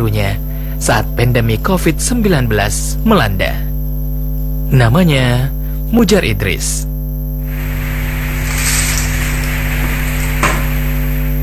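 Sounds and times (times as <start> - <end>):
speech: 0.0 - 3.7, 4.7 - 6.9
low electrical hum: 0.0 - 11.4
chips deep-frying in hot oil: 7.5 - 11.4.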